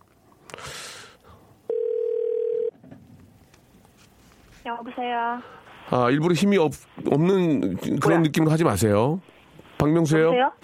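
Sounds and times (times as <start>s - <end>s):
telephone ringback tone: 1.7s - 2.7s
speech: 4.7s - 10.6s.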